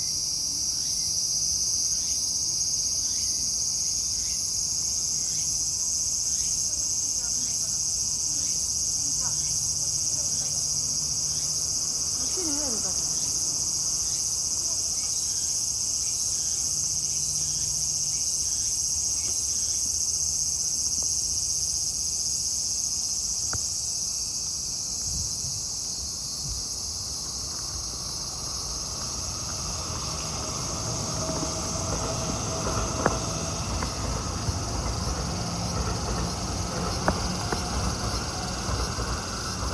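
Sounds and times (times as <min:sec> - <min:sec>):
cicadas droning: 0:00.0 - 0:39.7.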